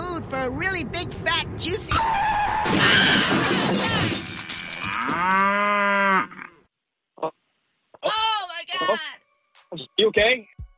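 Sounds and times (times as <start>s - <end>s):
speech: 0.3s - 4.3s, 5.0s - 6.0s, 9.7s - 10.6s
car hitting a cow: 2.0s - 5.5s
cow mooing: 4.8s - 6.6s.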